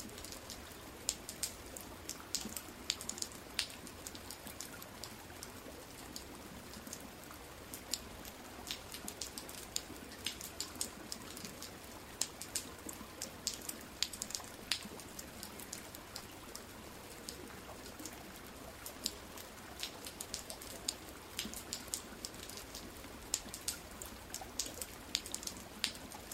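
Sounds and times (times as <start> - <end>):
steady rain: 0.0 - 26.3.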